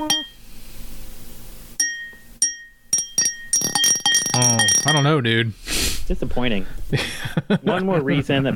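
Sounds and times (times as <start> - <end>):
glasses clinking together in a toast: 0.0 - 0.4, 1.8 - 5.2
speech: 4.4 - 8.5
laughter: 6.9 - 8.5.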